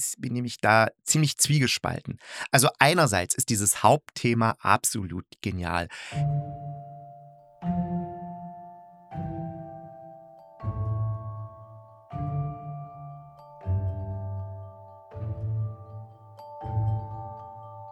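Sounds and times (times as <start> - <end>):
speech: 0.0 - 7.0
delicate glockenspiel chimes: 6.2 - 17.8
gentle restrained piano chords: 6.2 - 17.8.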